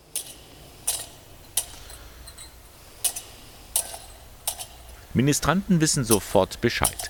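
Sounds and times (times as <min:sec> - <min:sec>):
church incense censer thurible clinking: 0:00.0 - 0:07.0
soft hiss: 0:00.0 - 0:07.0
speech: 0:05.2 - 0:07.0.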